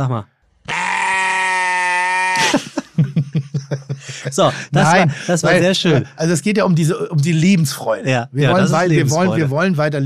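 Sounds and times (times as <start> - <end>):
speech: 0.0 - 0.3, 2.4 - 10.0
sheep bleat sound effect censoring a spoken word: 0.7 - 2.5
laughter: 2.2 - 6.2.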